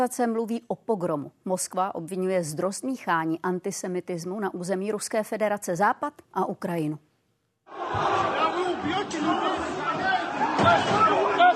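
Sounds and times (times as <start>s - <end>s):
speech: 0.0s - 7.1s
large agitated crowd of young men shouting while storming airport terminal: 7.7s - 11.5s
thuds and bangs: 10.5s - 11.2s.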